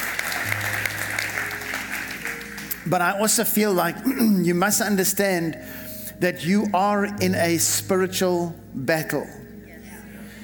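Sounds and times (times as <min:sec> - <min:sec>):
church audience clapping: 0:00.0 - 0:04.0
speech: 0:02.9 - 0:09.4.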